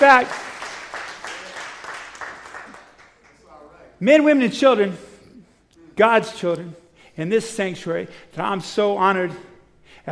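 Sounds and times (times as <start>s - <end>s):
speech: 0.0s - 0.4s, 4.0s - 5.1s, 6.0s - 10.1s
congregation applauding in a church sanctuary: 0.0s - 3.6s.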